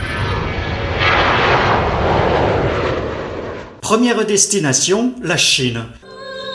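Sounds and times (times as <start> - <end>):
airplane engine roar: 0.0 - 3.8
speech: 3.9 - 6.0.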